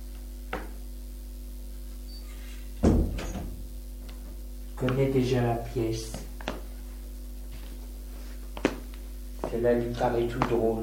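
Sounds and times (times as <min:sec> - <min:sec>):
low steady hum: 0:00.0 - 0:10.8
bedroom door thud and rattle as it swings: 0:02.8 - 0:03.7
speech: 0:04.8 - 0:06.3, 0:09.5 - 0:10.8.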